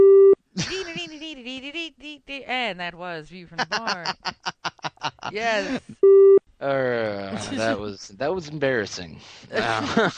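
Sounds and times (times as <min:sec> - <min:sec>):
electronic telephone tone: 0:00.0 - 0:00.4, 0:06.0 - 0:06.4
speech: 0:02.9 - 0:04.4, 0:05.3 - 0:06.0, 0:06.6 - 0:10.1
laughter: 0:03.6 - 0:06.0, 0:09.5 - 0:10.1.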